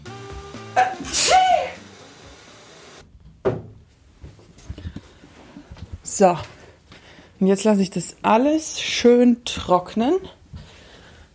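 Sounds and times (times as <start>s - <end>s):
speech: 0.8s - 1.4s, 6.2s - 6.6s, 7.4s - 10.4s
woman sneezing: 0.8s - 1.8s
knocks and thuds: 3.4s - 3.8s.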